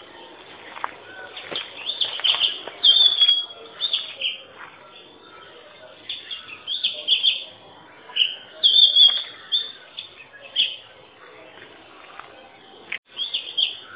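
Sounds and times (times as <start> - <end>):
magpie-robin singing short bright whistled phrases: 1.4 - 4.5, 5.2 - 10.9, 13.1 - 13.9.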